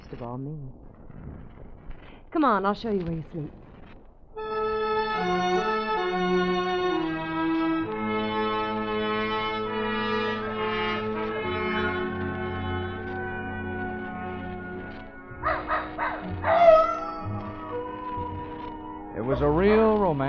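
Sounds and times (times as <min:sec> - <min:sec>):
speech: 0:00.1 - 0:01.7, 0:02.3 - 0:03.6
sustained orchestral tones: 0:04.4 - 0:20.2
faint howling of coyotes in the hills: 0:15.3 - 0:20.2
dog barking at night: 0:15.4 - 0:17.2.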